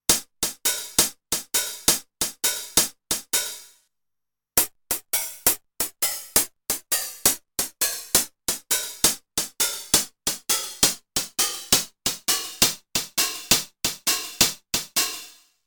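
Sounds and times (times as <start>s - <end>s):
pitched TR-909 drum machine hi-hat: 0.0s - 3.8s, 4.6s - 15.5s.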